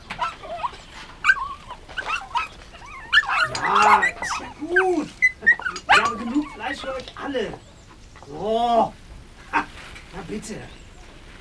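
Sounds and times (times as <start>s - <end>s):
puppies at a campsite whimpering and yipping: 0.0s - 8.2s
speech: 10.3s - 10.8s.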